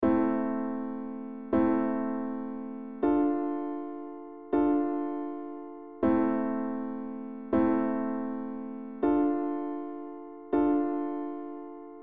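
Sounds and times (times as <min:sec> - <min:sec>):
minor chord progression: 0:00.0 - 0:12.0.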